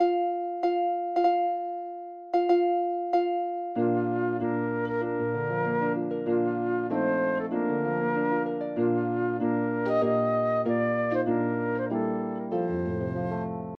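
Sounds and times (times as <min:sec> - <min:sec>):
harp: 0:00.0 - 0:13.7
flute: 0:03.8 - 0:13.7.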